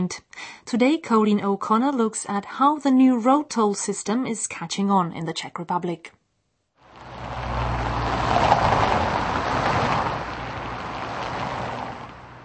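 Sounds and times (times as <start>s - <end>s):
speech: 0.0s - 6.2s
large lorry passing with deep engine rumble: 6.8s - 12.4s
roar of heavy motorway traffic: 6.8s - 12.4s.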